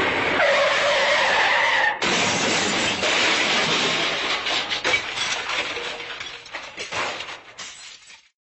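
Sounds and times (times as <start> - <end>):
car crash: 0.2 - 8.3.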